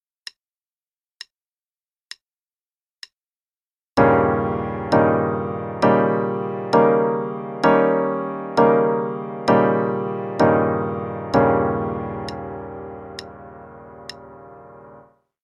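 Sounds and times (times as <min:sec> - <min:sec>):
V7 chords in A-flat major: 0:04.0 - 0:15.1.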